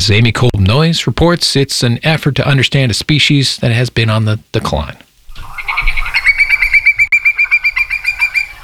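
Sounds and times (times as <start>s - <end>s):
speech: 0.0s - 5.0s
Hudsonian whimbrel call with rapid whistled piping notes: 5.3s - 8.6s.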